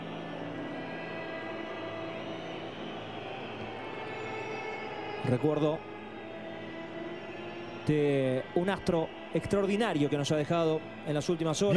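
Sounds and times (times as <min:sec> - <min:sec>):
large stadium crowd whistling during moment of silence: 0:00.0 - 0:11.7
speech: 0:05.2 - 0:05.9, 0:07.9 - 0:11.7.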